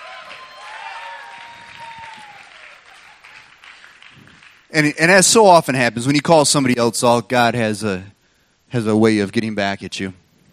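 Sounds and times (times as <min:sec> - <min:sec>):
faint whistle or cheer: 0:00.0 - 0:03.4
room full of people applauding: 0:00.0 - 0:04.7
speech: 0:04.7 - 0:08.1, 0:08.7 - 0:10.2.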